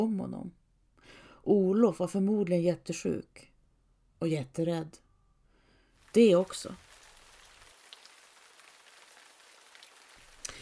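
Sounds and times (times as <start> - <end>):
speech: 0.0 - 3.5, 4.2 - 5.0, 6.1 - 6.8
heavy rain pouring: 6.1 - 10.6.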